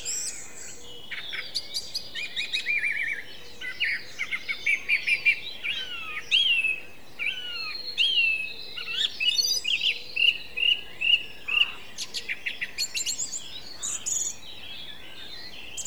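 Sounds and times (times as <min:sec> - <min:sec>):
song thrush singing: 0:00.0 - 0:15.8.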